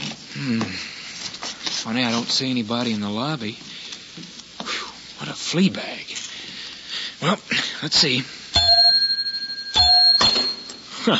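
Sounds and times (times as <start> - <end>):
speech: 0.4 - 1.0, 1.8 - 3.7, 5.3 - 6.2, 7.2 - 8.4
desk bell in a lobby ringing: 8.6 - 11.0.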